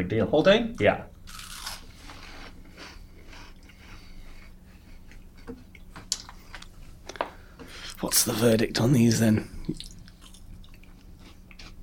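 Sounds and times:
speech: 0.0s - 1.1s, 8.0s - 9.9s
low hum: 0.0s - 11.8s
someone biting and chewing a crunchy snack topped with onion, cabbage and prawn: 1.3s - 2.0s.

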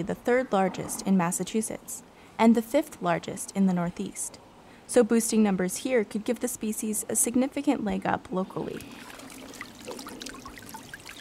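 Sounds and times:
speech: 0.0s - 9.2s
pond water sloshing as two people wade at Great Meadows Massachusetts: 8.7s - 11.1s.

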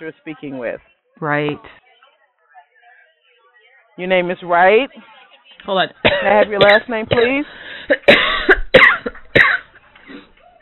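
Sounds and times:
speech: 0.0s - 1.8s, 4.0s - 8.3s
harsh raspy coughs with wheezy tail: 6.0s - 10.3s.

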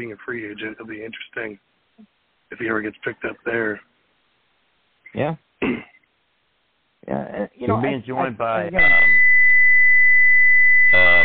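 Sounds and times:
speech: 0.0s - 3.9s, 5.1s - 5.9s, 7.1s - 9.2s
loud steady high electronic beep from an unknown device: 8.8s - 11.2s.

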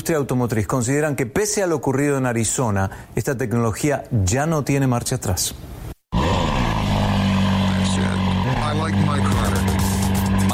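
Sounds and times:
speech: 0.0s - 5.8s
engine roaring at the 2018 Atlanta International Auto Show: 6.2s - 10.5s.

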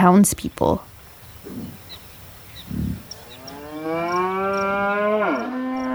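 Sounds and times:
faint birds chirping: 0.0s - 4.9s
dull low thuds: 0.4s - 3.8s
cow mooing on a farm: 0.8s - 3.8s.

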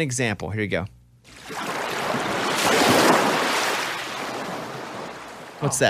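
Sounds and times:
speech: 0.0s - 1.6s, 5.6s - 5.8s
ocean waves washing onto a beach: 1.3s - 5.7s.

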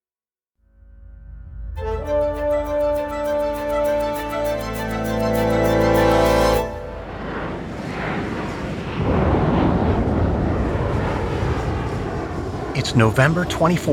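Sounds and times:
Boeing 727 passenger plane engine drone in flight over Washington State: 1.5s - 13.9s
roaring rush of wind: 6.4s - 13.9s
thunderclaps: 6.8s - 13.6s
speech: 13.0s - 13.9s.

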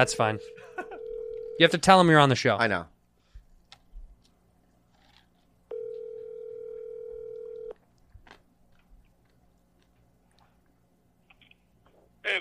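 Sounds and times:
speech: 0.0s - 0.7s, 1.6s - 2.9s
telephone ringback tone over a line while a call is placed: 0.3s - 1.7s, 5.7s - 7.7s.

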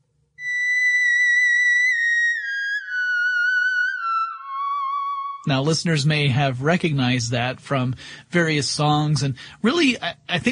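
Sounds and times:
theremin playing a sustained wavering electronic tone: 0.4s - 5.6s
speech: 5.4s - 10.4s.

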